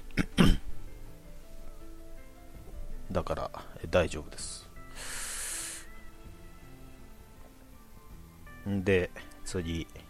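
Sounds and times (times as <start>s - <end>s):
person coughing from choking on something swallowed: 0.2s - 0.7s
speech: 3.2s - 4.6s, 8.7s - 9.8s.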